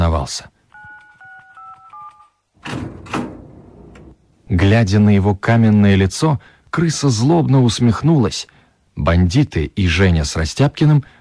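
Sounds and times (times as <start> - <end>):
speech: 0.2 - 0.5, 4.5 - 11.1
electronic keypad beeps entering an access code: 0.7 - 2.4
heavy door sliding open with a whooshing rumble: 2.6 - 4.2
loud mechanical clunk of a heavy door: 2.6 - 4.2.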